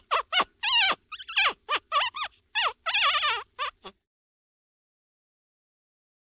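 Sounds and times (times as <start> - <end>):
dog yelping barks: 0.0 - 3.9.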